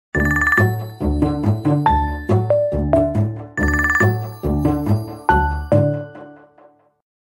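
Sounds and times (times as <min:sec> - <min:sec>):
Nokia 9 PureView mobile phone ringtone: 0:00.2 - 0:01.2, 0:01.8 - 0:05.9.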